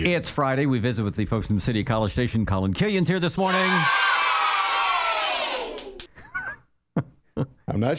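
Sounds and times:
speech: 0:00.0 - 0:04.1, 0:07.8 - 0:07.9
group of children cheering and shouting: 0:03.4 - 0:06.1
scattered high-pitched whoops: 0:03.4 - 0:06.1.

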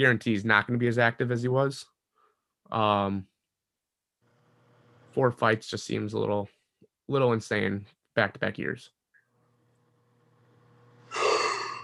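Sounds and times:
speech: 0:00.0 - 0:01.9, 0:02.7 - 0:03.3, 0:05.2 - 0:09.0
big yawn with breathy intake: 0:11.1 - 0:11.8.

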